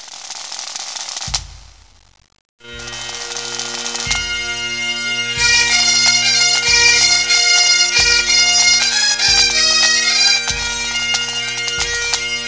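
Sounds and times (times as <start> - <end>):
Breton bagad pipe band playing: 2.6 - 12.4.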